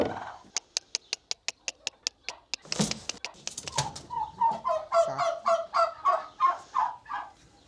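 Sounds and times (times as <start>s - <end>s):
turkey hens clucking in a feed dispenser: 0.0s - 7.6s
sharp clicks in a feed dispenser: 0.5s - 4.0s.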